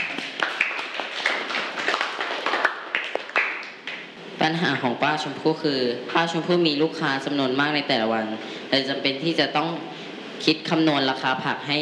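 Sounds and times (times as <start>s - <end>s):
children clapping in a classroom: 0.0s - 4.1s
speech: 4.5s - 11.8s.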